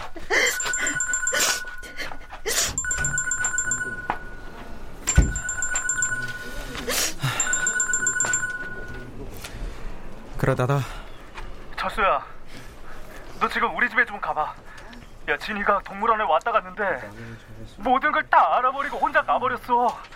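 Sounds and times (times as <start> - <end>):
phone ringing with bright warbling electronic ringtone: 0.3 - 9.1
speech: 10.4 - 11.0, 11.8 - 12.4, 13.4 - 14.7, 15.3 - 20.1.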